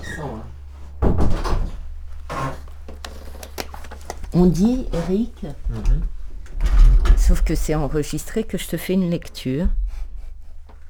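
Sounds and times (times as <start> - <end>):
door pushed shut with a clattering bump: 0.0 - 3.5, 5.8 - 7.5
steady low hum: 0.0 - 10.8
speech: 4.3 - 6.2, 7.3 - 9.8.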